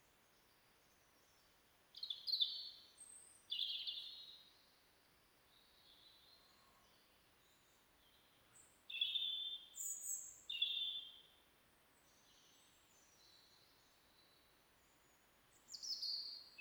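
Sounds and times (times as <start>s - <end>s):
European robin Erithacus rubecula singing: 2.0s - 4.4s, 8.9s - 11.3s, 15.6s - 16.6s.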